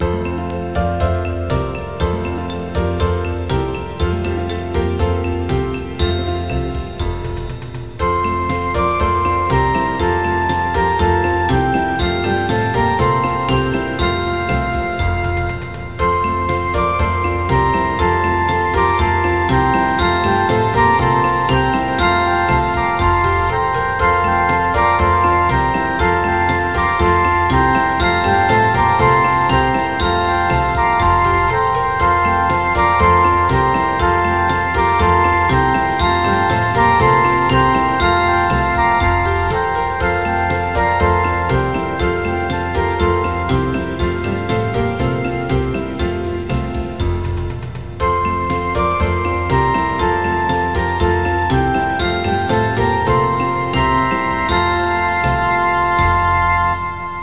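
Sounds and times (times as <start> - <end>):
circus song round backing track: 0.0 - 57.2.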